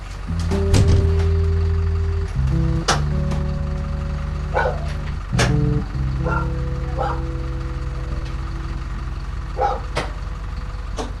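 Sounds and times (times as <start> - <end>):
truck engine idling: 0.0 - 11.1
dogs barking at a dog farm in South Korea: 4.5 - 5.0, 6.2 - 7.4, 9.6 - 10.1.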